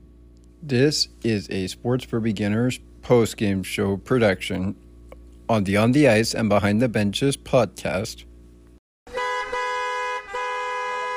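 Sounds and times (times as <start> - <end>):
speech: 0.6 - 4.8, 5.5 - 8.3
car horns honking in heavy traffic on a Friday evening: 9.1 - 11.1.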